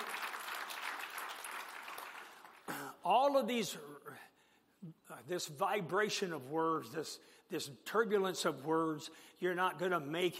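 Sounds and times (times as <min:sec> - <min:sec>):
church congregation clapping: 0:00.0 - 0:02.8
speech: 0:03.1 - 0:10.3.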